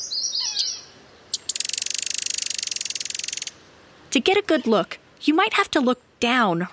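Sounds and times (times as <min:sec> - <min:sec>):
common yellowthroat warbler singing chirps and a high trill: 0:00.0 - 0:04.7
speech: 0:04.1 - 0:06.7.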